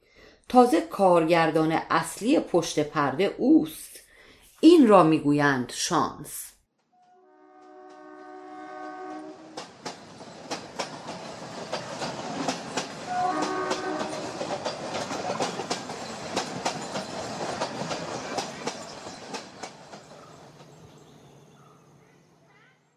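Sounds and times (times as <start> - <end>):
speech: 0.5 - 4.0, 4.6 - 6.5
train horn: 7.0 - 9.6, 13.1 - 14.4
train wheels clacking over rail joints: 9.5 - 20.9.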